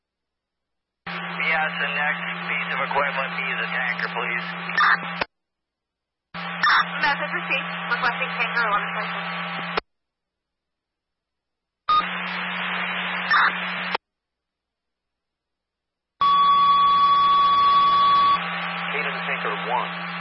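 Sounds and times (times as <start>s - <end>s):
faint radio chatter: 1.1s - 5.3s, 6.4s - 9.8s, 13.3s - 14.0s, 18.8s - 20.2s
static-filled scanner radio transmission bursts: 1.1s - 5.3s, 6.4s - 9.8s, 11.9s - 14.0s, 17.5s - 20.2s
speech: 1.5s - 5.3s, 6.8s - 9.8s
fire dispatch still-alarm electronic beep over a scanner radio: 11.9s - 12.1s, 16.2s - 18.4s.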